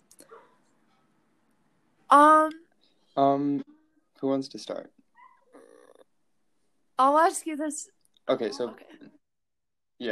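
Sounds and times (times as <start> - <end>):
dog barking: 0.2 - 0.6
speech: 2.1 - 2.6, 3.2 - 5.0, 7.0 - 9.2.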